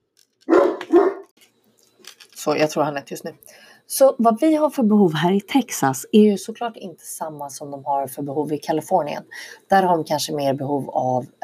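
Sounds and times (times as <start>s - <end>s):
deaf dog barking in Texas: 0.5s - 1.3s
speech: 2.4s - 11.4s.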